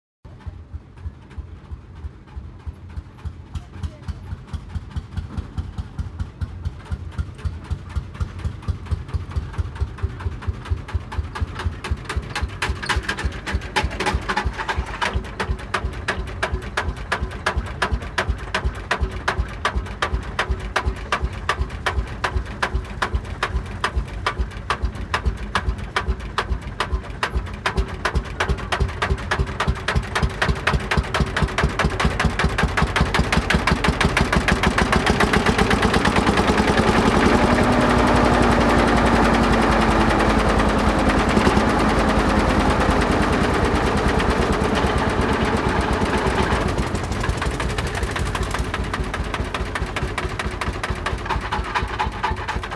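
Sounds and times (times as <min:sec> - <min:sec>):
tractor driving: 0:00.3 - 0:52.7.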